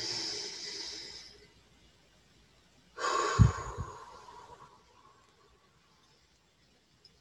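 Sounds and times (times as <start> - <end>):
deep breath in and out: 0.0 - 1.5, 3.0 - 5.3.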